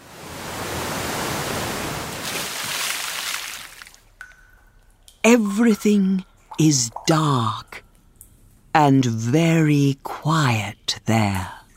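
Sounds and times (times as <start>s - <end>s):
waterfall crashing roar: 0.0s - 2.8s
speech: 5.2s - 7.8s, 8.8s - 11.6s.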